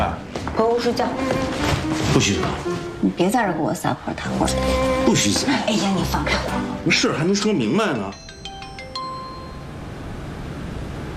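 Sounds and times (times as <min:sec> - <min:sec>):
speech: 0:00.6 - 0:08.2
phone ringing with a chiming ringtone: 0:07.8 - 0:09.8.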